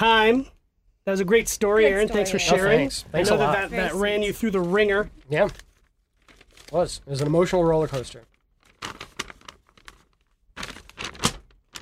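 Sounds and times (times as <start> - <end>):
speech: 0.0 - 5.7, 6.7 - 9.0
paper printout rustling as pulled from a pocket: 3.2 - 11.8.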